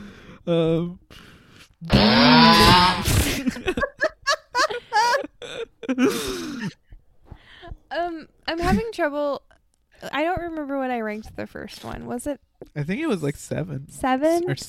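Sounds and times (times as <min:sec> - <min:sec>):
speech: 0:00.5 - 0:03.9, 0:05.9 - 0:06.8, 0:08.0 - 0:09.4, 0:10.1 - 0:14.6
person vocally imitating a chainsaw: 0:01.8 - 0:03.4
laughter-like gasps: 0:03.0 - 0:06.8.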